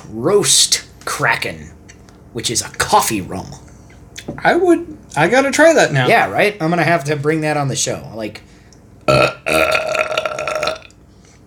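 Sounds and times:
speech: 0:00.1 - 0:08.5
loud deep belch: 0:09.1 - 0:11.0.

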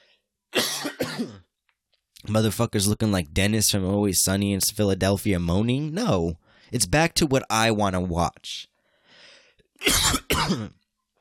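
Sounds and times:
harsh dry coughs from a dry throat: 0:00.6 - 0:01.5, 0:09.8 - 0:10.8
soft throat-clearing rasp: 0:00.6 - 0:01.5, 0:09.8 - 0:10.8
speech: 0:02.3 - 0:08.7, 0:09.8 - 0:10.8.

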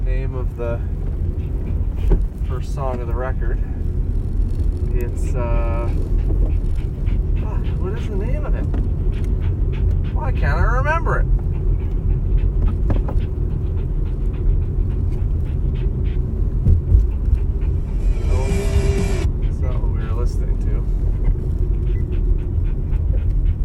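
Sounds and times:
constant low engine-like rumble: 0:00.0 - 0:23.6
speech: 0:00.1 - 0:01.1, 0:02.0 - 0:03.8, 0:05.0 - 0:06.9, 0:07.5 - 0:11.4
dog panting: 0:00.5 - 0:03.6, 0:05.0 - 0:23.6
brief brighter burst of noise: 0:17.6 - 0:19.3.

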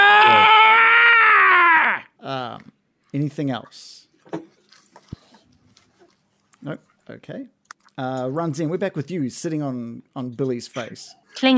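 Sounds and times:
person imitating a scream of pain: 0:00.0 - 0:02.1
speech: 0:03.1 - 0:04.0, 0:06.6 - 0:11.5.

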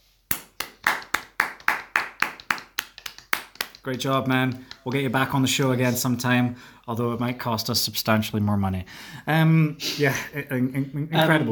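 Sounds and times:
single person clapping: 0:00.3 - 0:05.5
speech: 0:03.8 - 0:11.4.

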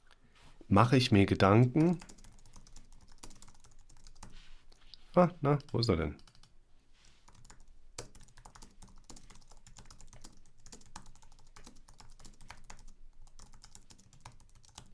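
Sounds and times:
speech: 0:00.7 - 0:02.1, 0:05.2 - 0:06.2
rapid typing on a computer keyboard: 0:01.8 - 0:04.4, 0:05.6 - 0:06.5, 0:07.2 - 0:14.9.

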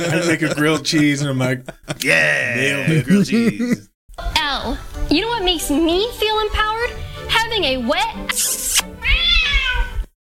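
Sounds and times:
laughter: 0:00.0 - 0:03.9
speech: 0:00.0 - 0:03.9, 0:04.6 - 0:06.7, 0:07.6 - 0:08.9
cat meowing: 0:09.0 - 0:10.1.

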